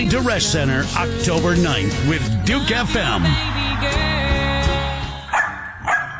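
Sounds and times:
speech: 0.0 - 4.2
puppy yapping with short high-pitched barks: 5.3 - 6.1.

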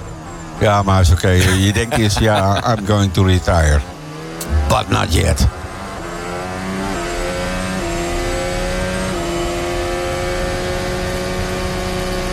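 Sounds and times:
speech: 0.6 - 5.6
laughter: 1.2 - 3.7
car engine revving with a misfiring cylinder: 2.5 - 12.3.

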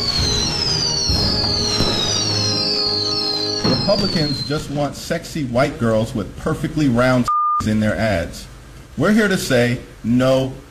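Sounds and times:
fireworks whistling: 0.0 - 5.0
speech: 3.9 - 10.6.

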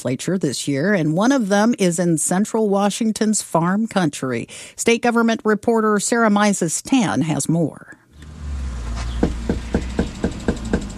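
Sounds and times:
speech: 0.0 - 8.0
political canvassers knocking on a front door in Yakima, Washington: 9.1 - 10.9.

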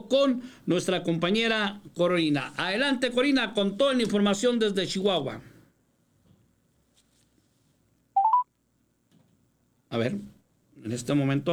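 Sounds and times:
speech: 0.1 - 5.5, 9.9 - 11.5
telephone keypad tones as a call is redialed: 8.2 - 8.4.

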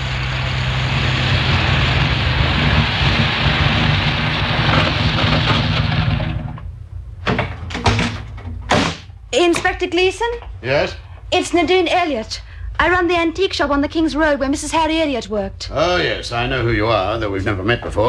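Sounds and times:
car engine rumbling: 0.0 - 8.6
speech: 9.4 - 18.0.

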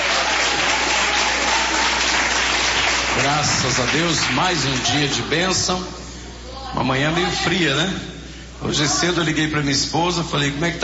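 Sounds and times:
church audience clapping during a service: 0.0 - 5.2
speech: 3.3 - 6.0, 6.7 - 10.8.

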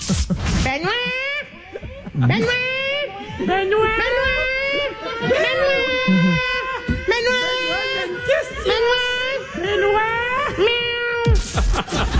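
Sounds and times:
laughter: 0.0 - 12.1
broadcast technician imitating cat meows backstage: 6.1 - 6.5.

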